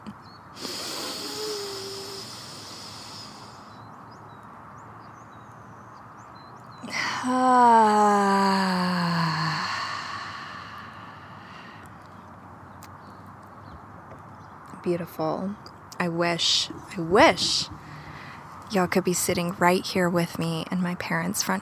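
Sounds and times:
deep breath drawn in outdoors in a front yard: 0.6s - 3.8s, 9.0s - 12.0s, 17.8s - 18.6s
long voiced exhaling sigh with downward pitch slide: 0.6s - 3.8s, 8.3s - 11.9s
speech: 7.2s - 8.0s, 14.8s - 17.9s, 18.7s - 21.6s.

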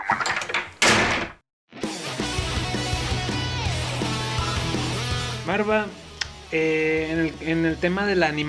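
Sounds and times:
door slamming shut: 0.1s - 1.4s
music: 1.8s - 8.4s
speech: 5.6s - 6.0s, 6.5s - 8.4s.

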